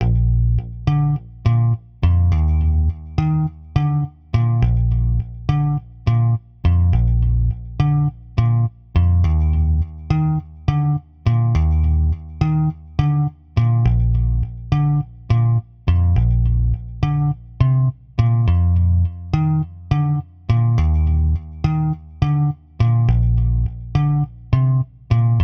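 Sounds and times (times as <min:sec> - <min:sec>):
bass loop: 0:00.0 - 0:25.4.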